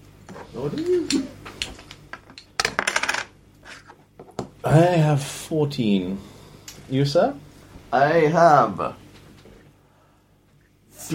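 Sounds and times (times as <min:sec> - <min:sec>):
speech: 0:00.5 - 0:01.4, 0:04.7 - 0:06.3, 0:06.9 - 0:09.0
coin dropping and spinning on a hard surface: 0:02.6 - 0:03.3.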